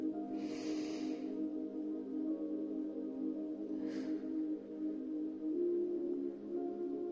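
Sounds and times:
steady sustained musical drone: 0.0s - 7.0s
slow deep breath in and out during a guided heart chakra meditation: 0.3s - 1.6s, 3.6s - 4.8s.

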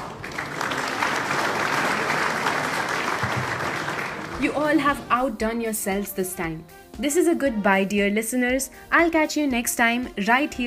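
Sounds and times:
recorded crowd applauding: 0.0s - 4.9s
speech: 4.4s - 10.6s.

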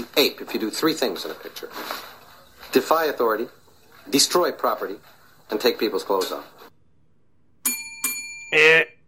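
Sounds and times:
speech: 0.2s - 6.6s, 8.5s - 8.9s
bright ringing bell dings: 7.6s - 8.6s.

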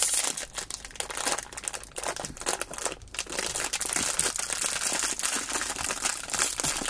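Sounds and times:
plastic bag of Twizzlers key lime pie filled twists crinkling as it is pulled open: 0.0s - 6.8s.

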